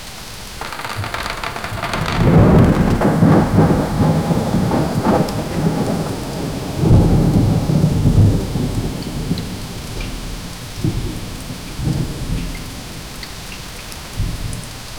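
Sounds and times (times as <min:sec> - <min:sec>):
rain at a cottage: 0:00.0 - 0:14.9
dark storm raging at a cottage: 0:00.6 - 0:09.7.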